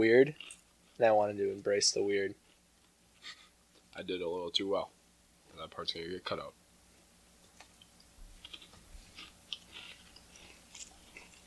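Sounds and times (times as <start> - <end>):
speech: 0.0 - 2.4, 3.2 - 3.4, 4.0 - 5.0, 5.6 - 6.6
people munching on Cheez-It crackers: 0.3 - 1.1, 2.4 - 3.9, 7.4 - 11.4.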